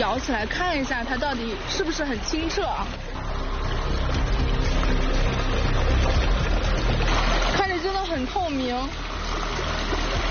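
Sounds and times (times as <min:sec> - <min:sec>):
speech: 0:00.0 - 0:03.2, 0:07.8 - 0:09.5
mountain spring water rushing: 0:00.0 - 0:10.2.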